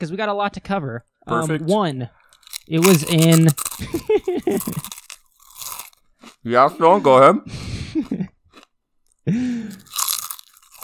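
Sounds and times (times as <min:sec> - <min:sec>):
speech: 0:00.0 - 0:05.0, 0:06.4 - 0:08.3, 0:09.3 - 0:09.9
chewing noise: 0:01.3 - 0:07.2, 0:08.0 - 0:10.8
loud crunching of chips picked up by a microphone: 0:01.3 - 0:07.2, 0:08.5 - 0:10.8.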